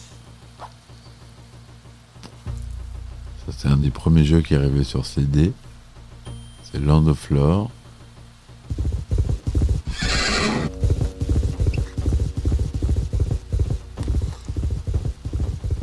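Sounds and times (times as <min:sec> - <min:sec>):
speech: 0:03.5 - 0:05.7, 0:06.8 - 0:07.8
horse hooves clip-clopping in a game intro: 0:08.6 - 0:15.8
horse whinny in a game intro: 0:09.8 - 0:10.7.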